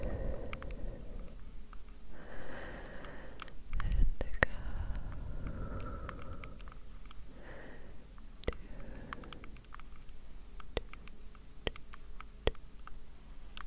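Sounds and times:
quiet low hush: 0:00.0 - 0:09.8
soft breathing: 0:00.0 - 0:11.3.

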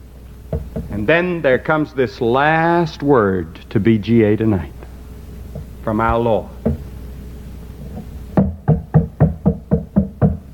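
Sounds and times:
speech: 0:00.5 - 0:04.8, 0:05.8 - 0:06.8
knocking on a wooden door: 0:06.6 - 0:06.8, 0:08.4 - 0:10.5.

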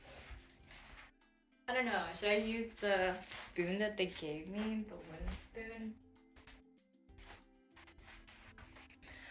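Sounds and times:
speech: 0:01.8 - 0:06.0
lunch container handling rustles: 0:02.5 - 0:05.5.

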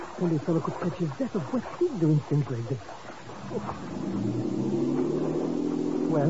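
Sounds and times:
speech: 0:00.2 - 0:04.4
motorboat engine revving and pulling away: 0:03.3 - 0:06.2.

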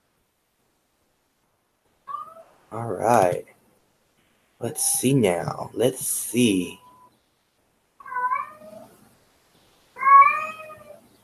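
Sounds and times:
cat meowing: 0:02.0 - 0:02.5, 0:08.0 - 0:09.0, 0:10.0 - 0:11.0
speech: 0:02.7 - 0:03.5, 0:04.6 - 0:06.8.

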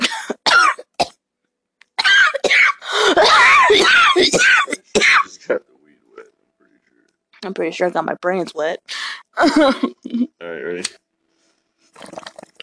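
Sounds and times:
person coughing: 0:00.0 - 0:01.1, 0:02.0 - 0:05.6
speech: 0:04.2 - 0:04.6, 0:07.4 - 0:11.0.

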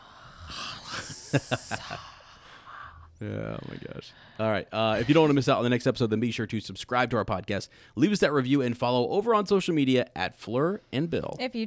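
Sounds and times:
voice imitating a hissing snake: 0:00.4 - 0:01.9
speech: 0:01.3 - 0:02.1, 0:03.2 - 0:11.6.

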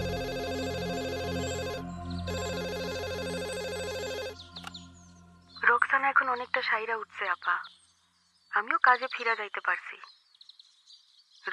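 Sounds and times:
telephone ringing with a warbling electronic tone: 0:00.0 - 0:04.4
speech: 0:06.4 - 0:07.8, 0:08.5 - 0:10.2.

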